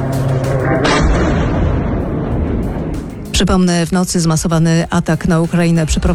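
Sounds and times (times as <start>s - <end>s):
loud rumbling explosion blast at Russian plants: 0.0s - 3.6s
continuous low-end roaring noise: 0.0s - 6.1s
speech: 3.4s - 6.1s.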